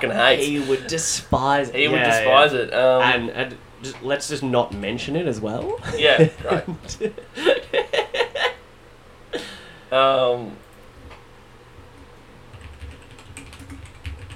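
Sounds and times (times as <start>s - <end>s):
speech: 0.0s - 7.6s, 9.9s - 10.6s
laughter: 5.8s - 8.6s
typing on a computer keyboard: 12.5s - 14.3s.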